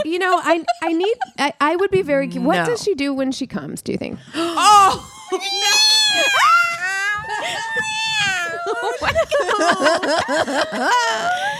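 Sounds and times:
laughter: 0:00.0 - 0:01.8, 0:04.9 - 0:11.5
speech: 0:00.0 - 0:06.7, 0:07.4 - 0:11.5
cat meowing loudly and insistently: 0:04.8 - 0:08.6.

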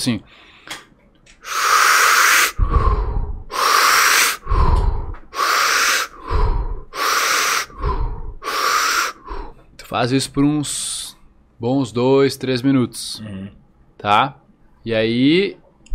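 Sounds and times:
speech: 0:00.0 - 0:00.8, 0:09.9 - 0:10.9, 0:11.6 - 0:15.6
forceful rapid breathing exercise with loud inhales and exhales: 0:01.4 - 0:09.7.

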